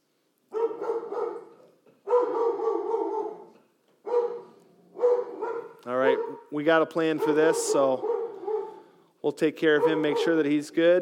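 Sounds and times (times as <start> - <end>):
dog barking in drawn-out whining bursts: 0.5 - 6.5, 7.2 - 8.9, 9.8 - 10.6
speech: 5.8 - 8.2, 9.2 - 10.9.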